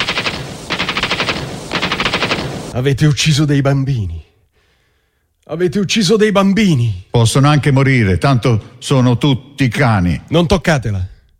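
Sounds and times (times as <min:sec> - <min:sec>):
automatic gunfire during an assault on a hospital: 0:00.0 - 0:02.8
speech: 0:02.8 - 0:04.3, 0:05.5 - 0:11.1.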